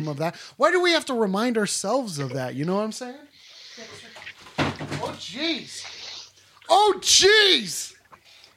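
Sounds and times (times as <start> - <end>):
speech: 0.0 - 4.1, 5.0 - 6.0, 6.7 - 8.0
objects clattering as they are knocked over: 3.9 - 5.4
person exclaiming: 6.7 - 7.9.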